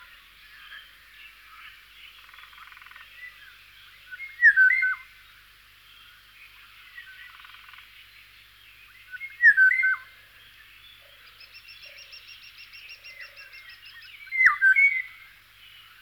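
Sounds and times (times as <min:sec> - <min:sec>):
small birds calling: 0:08.8 - 0:16.0
Eurasian golden oriole singing rich whistled phrases: 0:14.2 - 0:15.2.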